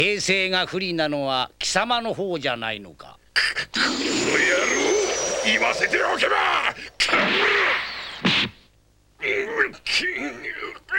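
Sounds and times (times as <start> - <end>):
speech: 0.0 - 7.8, 9.2 - 10.9
long loud sweeping rush of an animated fight punch: 3.9 - 7.2.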